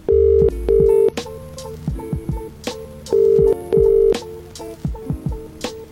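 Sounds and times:
telephone ringback tone from a phone call being placed: 0.0 - 1.1, 3.1 - 4.2
rhythmic backing beat with thumping drums: 0.3 - 5.9.

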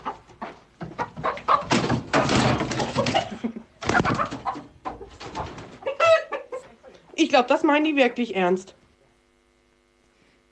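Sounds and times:
chickens clucking in a henhouse: 0.0 - 7.2
speech: 7.3 - 8.8.

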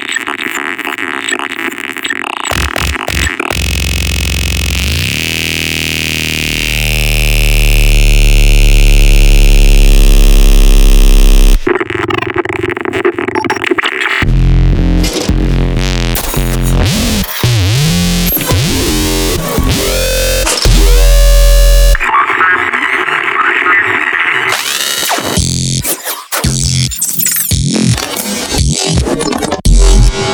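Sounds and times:
headbanging dubstep track made by an electronic dance music generator: 0.0 - 30.3
heavily distorted, wobbling synth bass: 0.0 - 30.3.

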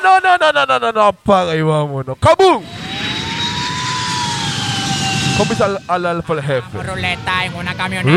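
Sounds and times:
speech: 0.0 - 2.8, 5.4 - 8.1
jet airplane roar coming in to land: 2.4 - 8.1.

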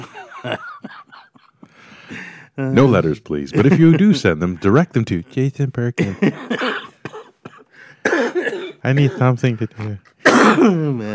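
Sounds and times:
laughter: 0.0 - 1.3, 2.8 - 4.9, 6.0 - 6.6
harsh raspy coughing: 0.0 - 1.8, 6.0 - 9.5, 10.1 - 11.0
speech: 0.4 - 0.7, 2.6 - 6.8, 8.8 - 11.1.

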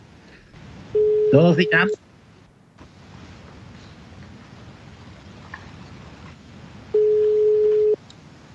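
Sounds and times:
low hum: 0.0 - 8.5
speech: 0.9 - 2.0
telephone ringback tone while a call connects: 1.0 - 2.0, 7.0 - 8.0.

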